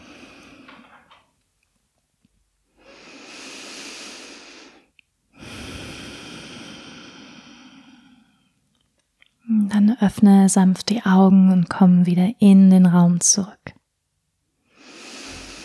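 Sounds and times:
deep breathing in and out during a guided relaxation exercise: 0.0 - 1.2, 2.7 - 8.6, 14.6 - 15.6
speech: 9.9 - 13.6.

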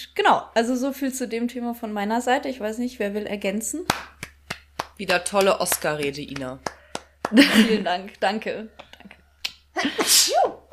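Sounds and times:
speech: 0.1 - 4.2, 5.0 - 9.0, 9.8 - 10.7
laughter: 7.3 - 8.0
person sneezing: 9.9 - 10.6.

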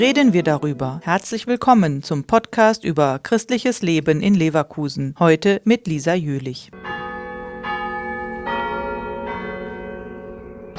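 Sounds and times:
largest church bell rung by pulling: 0.0 - 1.2, 6.8 - 10.7
speech: 0.0 - 7.0.

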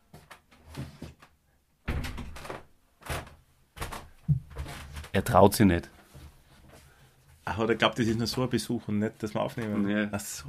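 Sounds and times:
door being handled and opened: 1.9 - 4.1
speech: 5.2 - 6.0, 7.6 - 10.4.

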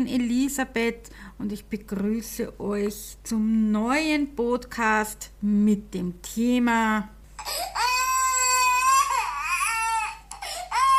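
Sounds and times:
speech: 0.0 - 7.8
baby crying: 7.4 - 10.9.

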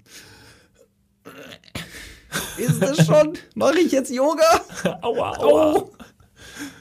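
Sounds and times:
person breathing in and out in exaggerated noisy breaths: 0.0 - 0.8, 6.4 - 6.8
laughter: 2.3 - 3.4, 4.6 - 6.1
speech: 2.6 - 6.0.

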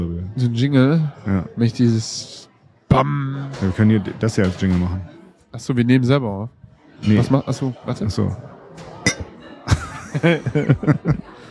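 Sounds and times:
speech: 0.4 - 8.9, 10.2 - 11.4
glasses clinking in a toast: 9.1 - 9.4
soft chuckling and voiced laughter: 9.7 - 11.4.

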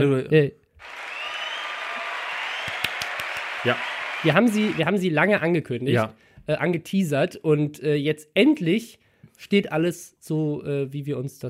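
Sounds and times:
speech: 0.0 - 1.0, 3.6 - 11.4
sharp individual claps: 0.8 - 4.8
crowd applause: 0.8 - 5.0.

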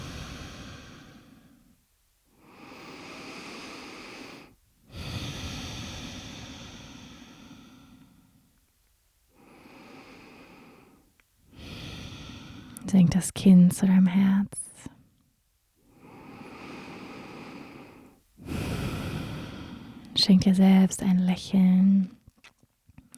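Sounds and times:
deep breathing in and out: 0.0 - 8.6, 9.3 - 12.9, 15.8 - 20.2
speech: 12.9 - 14.6, 20.3 - 22.2.

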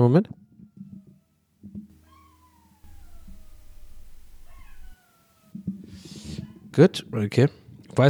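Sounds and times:
speech: 0.0 - 0.4, 6.8 - 8.0
dog howling through a wall in a neighbouring apartment: 0.4 - 6.7
low hum: 1.8 - 6.6.

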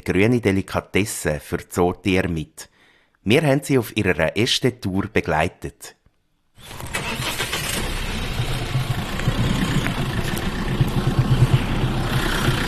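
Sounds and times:
speech: 0.0 - 6.0
truck engine starting and idling: 6.6 - 12.6.

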